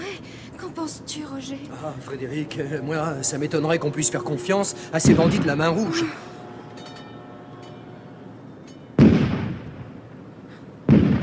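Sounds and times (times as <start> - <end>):
speech: 0.8 - 6.4
cannon firing: 9.0 - 10.0, 10.9 - 11.2.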